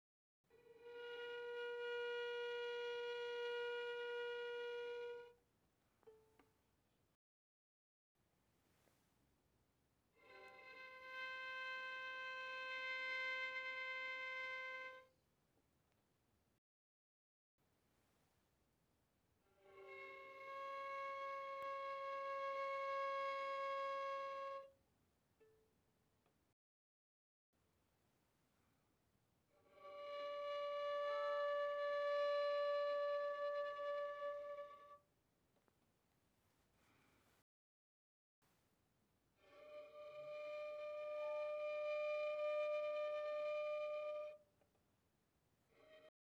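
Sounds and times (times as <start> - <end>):
violin bowed pianissimo on the D string: 0.5 - 5.4, 10.1 - 15.2, 19.5 - 24.8, 29.5 - 35.1, 39.4 - 44.5, 45.7 - 46.1.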